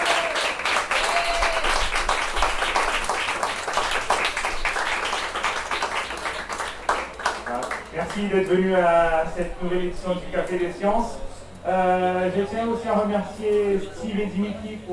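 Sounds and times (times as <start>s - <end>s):
audience applause at a science café event on bioclimatic architecture: 0.0s - 8.3s
speech: 8.2s - 14.9s.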